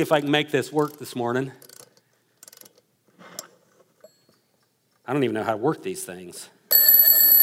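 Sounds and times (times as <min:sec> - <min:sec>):
speech: 0:00.0 - 0:01.7, 0:05.1 - 0:06.6
antique mechanical alarm clock being wound with ratcheting clicks: 0:06.7 - 0:07.4.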